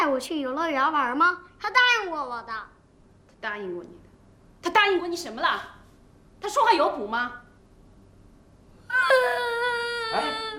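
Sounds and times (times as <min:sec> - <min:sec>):
speech: 0:00.2 - 0:02.8, 0:03.4 - 0:04.0, 0:04.6 - 0:05.8, 0:06.4 - 0:07.4, 0:08.9 - 0:10.5
child crying: 0:08.9 - 0:10.5.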